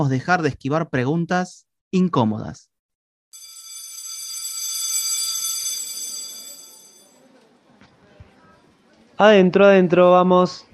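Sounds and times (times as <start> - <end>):
speech: 0.0 - 2.7, 9.2 - 10.7
electric school bell ringing for end of recess: 3.4 - 7.2.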